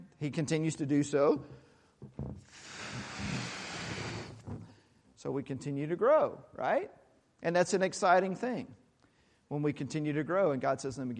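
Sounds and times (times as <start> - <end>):
speech: 0.2 - 3.4, 5.2 - 8.8, 9.5 - 11.1
breath blowing into a balloon: 2.0 - 4.9
short puffs of breath: 2.0 - 5.0.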